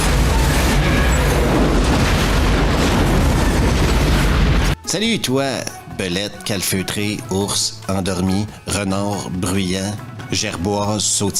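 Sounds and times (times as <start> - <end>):
explosion roaring with broadband rumble and crackle: 0.0 - 4.8
speech: 4.9 - 11.3.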